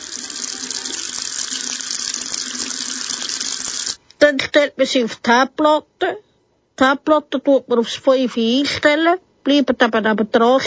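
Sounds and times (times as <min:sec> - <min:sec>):
tap water pouring into a cooking pan for making macaroni: 0:00.0 - 0:04.0
speech: 0:04.3 - 0:06.2, 0:06.8 - 0:10.6.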